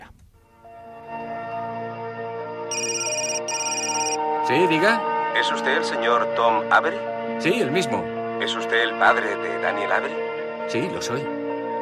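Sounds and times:
electronic telephone trilling at the opening of a film trailer: 0:02.7 - 0:04.2
speech: 0:04.5 - 0:11.4.

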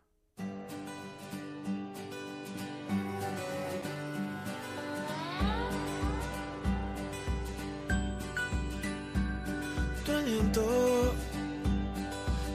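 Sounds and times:
sustained keyboard chords and sliding tones of a devotional song intro: 0:02.8 - 0:12.5
steady even bass-drum beat: 0:05.4 - 0:12.5.

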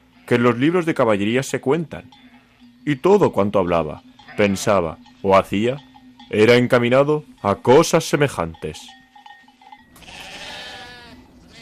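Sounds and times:
flock of sheep bleating: 0:00.0 - 0:00.8, 0:02.2 - 0:02.8, 0:04.2 - 0:04.8, 0:09.9 - 0:11.6
speech: 0:00.3 - 0:09.0.

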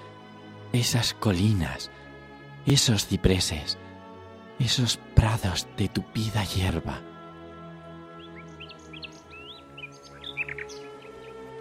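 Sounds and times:
many birds chirping and tweeting: 0:00.0 - 0:11.5
speech: 0:00.7 - 0:02.0, 0:02.6 - 0:03.8, 0:04.6 - 0:07.1.

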